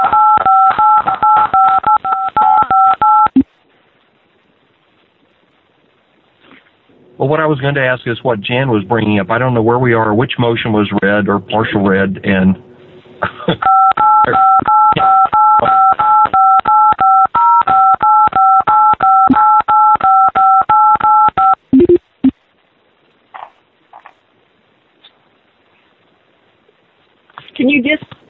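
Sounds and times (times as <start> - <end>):
telephone keypad tones from callers on a conference line: 0.0 - 3.4, 13.6 - 22.0
faint scattered noises: 0.0 - 28.2
speech: 7.5 - 12.6, 13.2 - 14.6.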